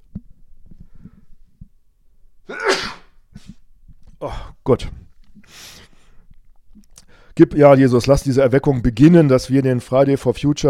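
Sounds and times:
soft breaths: 0:00.6 - 0:01.8, 0:03.3 - 0:07.4
sneeze: 0:02.5 - 0:03.2
speech: 0:04.2 - 0:05.0, 0:07.4 - 0:10.6.

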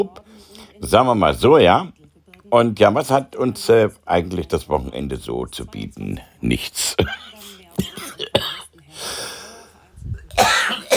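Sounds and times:
speech: 0:00.0 - 0:08.4
person coughing sharply and harshly: 0:07.0 - 0:08.7, 0:10.3 - 0:10.9.

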